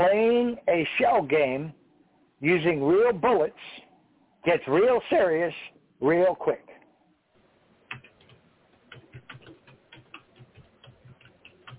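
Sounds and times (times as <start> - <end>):
speech: 0.0 - 1.8, 2.4 - 3.8, 4.4 - 6.7
faint hiss: 0.0 - 11.7
typing on a keyboard: 7.9 - 11.7.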